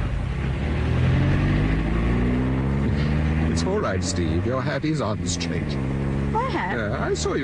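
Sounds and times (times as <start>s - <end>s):
car engine drone driven through heavy traffic: 0.0s - 7.4s
speech: 3.7s - 7.4s.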